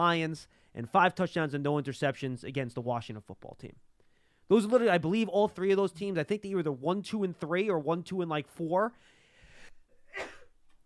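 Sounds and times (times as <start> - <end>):
speech: 0.0 - 3.9, 4.5 - 9.2
sneeze: 10.1 - 10.6.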